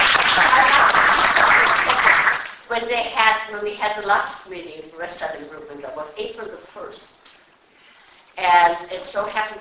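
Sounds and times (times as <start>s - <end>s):
room full of people clapping: 0.0s - 2.6s
speech: 2.8s - 7.4s, 8.4s - 9.5s.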